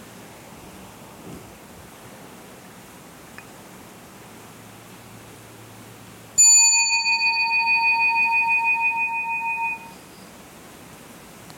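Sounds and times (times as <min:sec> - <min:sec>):
bell struck and ringing: 0:06.4 - 0:10.0.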